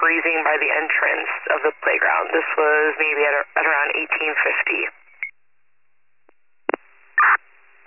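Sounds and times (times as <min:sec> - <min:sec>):
speech: 0:00.2 - 0:05.0
short electronic telephone tones over a quiet line: 0:07.2 - 0:07.4.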